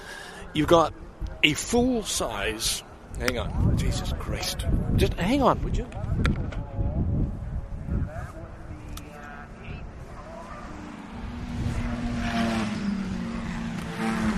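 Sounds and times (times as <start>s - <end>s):
faint indistinct voices: 0.0s - 12.1s
speech: 0.5s - 6.4s
cars passing by: 8.4s - 14.3s.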